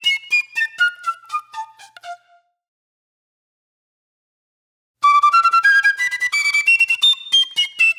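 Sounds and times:
shrill flute: 0:00.0 - 0:02.6, 0:05.0 - 0:07.9.

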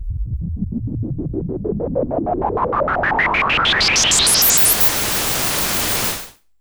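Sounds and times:
pulsing filtered noise with hiss and crackle: 0:00.0 - 0:06.4.

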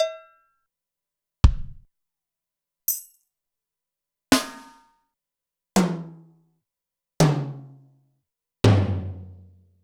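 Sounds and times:
drum machine kit hits: 0:01.4 - 0:01.8, 0:08.7 - 0:09.4.

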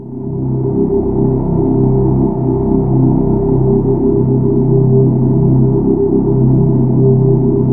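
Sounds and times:
synthesizer choir sound: 0:00.0 - 0:07.7.

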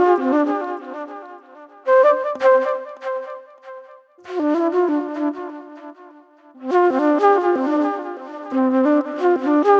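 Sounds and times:
psychedelic acid trip flute: 0:00.0 - 0:09.7.

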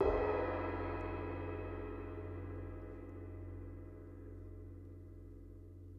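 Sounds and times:
orchestral percussion cymbal one-shot hit: 0:00.0 - 0:03.1.

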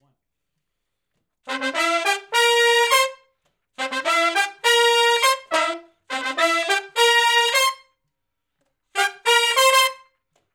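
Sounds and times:
R&B horn section riff in unison: 0:01.5 - 0:07.8, 0:09.0 - 0:10.1.

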